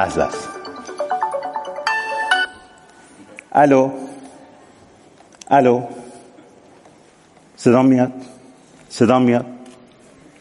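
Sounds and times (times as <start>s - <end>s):
speech: 0.0s - 0.6s, 3.6s - 4.0s, 5.5s - 6.0s, 7.6s - 8.3s, 8.9s - 9.6s
mobile phone ringtone for an incoming call: 0.0s - 2.8s.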